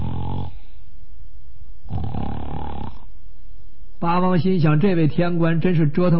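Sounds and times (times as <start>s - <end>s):
storyteller imitating loud snoring of a sleeping man: 0.0s - 0.6s, 1.9s - 3.1s
speech: 4.0s - 6.1s.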